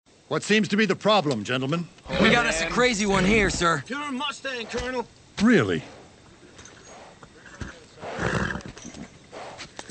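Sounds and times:
speech: 0.3 - 6.0
wild mustang horse whinnying: 2.0 - 3.4, 6.6 - 9.6
wild mustang horse snorting: 2.0 - 3.6, 4.5 - 5.0, 5.7 - 9.8.

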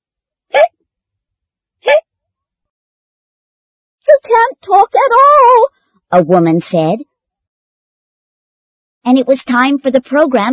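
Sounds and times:
hiccups: 1.8 - 2.0
speech: 4.2 - 7.1, 9.0 - 10.5.

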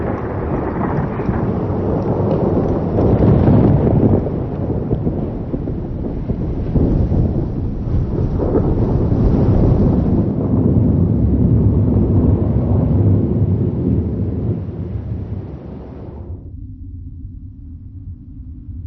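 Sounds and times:
rain: 0.0 - 16.4
deep rolling thunder: 0.0 - 18.8.

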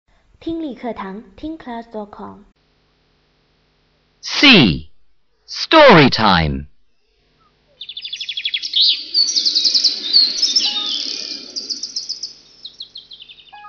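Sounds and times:
speech: 0.4 - 2.5, 4.3 - 4.9, 5.5 - 6.7
birds chirping in a park: 7.4 - 13.6.

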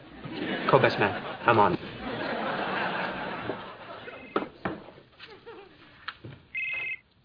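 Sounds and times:
laughter: 0.0 - 4.6, 5.2 - 6.0
speech: 0.7 - 2.0
short bright electronic telephone ring: 6.5 - 7.0.

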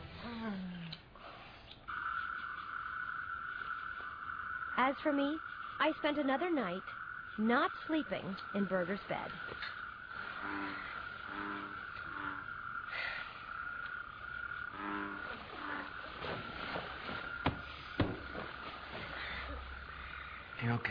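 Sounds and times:
frogs croaking at night: 0.0 - 20.9
night chorus of insects buzzing: 0.0 - 20.9
speech: 4.8 - 9.8, 10.4 - 11.8, 20.6 - 20.9
sharp knocks: 17.4 - 18.5.

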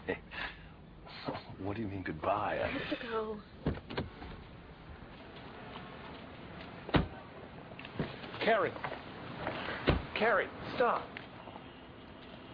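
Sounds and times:
speech: 1.6 - 3.8, 8.5 - 9.0, 10.2 - 11.2
car door opening: 3.6 - 4.5, 6.6 - 7.2, 7.9 - 10.2.

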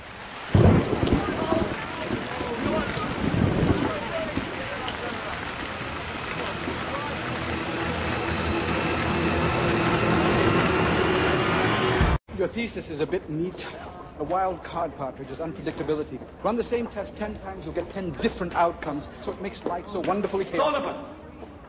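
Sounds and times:
steady heavy rain pouring: 0.0 - 12.2
loud rumbling crack: 0.5 - 12.2
speech: 12.5 - 21.2.

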